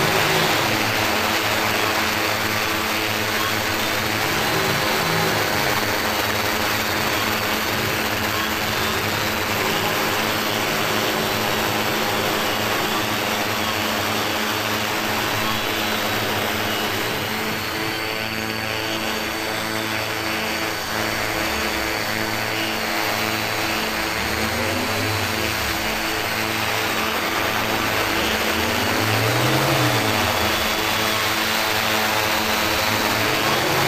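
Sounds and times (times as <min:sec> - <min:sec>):
worker drone hovering: 0:00.0 - 0:33.8.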